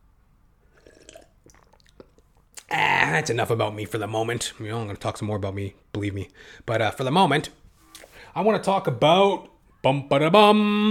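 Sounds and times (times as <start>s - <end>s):
person sipping water: 0.6s - 2.7s, 7.8s - 8.2s
speech: 2.7s - 7.6s, 8.4s - 10.8s.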